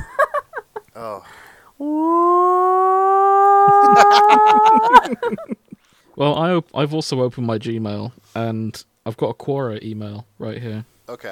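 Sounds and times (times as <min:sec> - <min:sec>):
speech: 0:01.0 - 0:02.2, 0:04.0 - 0:05.6, 0:06.2 - 0:11.3
voice imitating a hand-cranked klaxon siren: 0:01.8 - 0:05.1
laughter: 0:03.6 - 0:05.8.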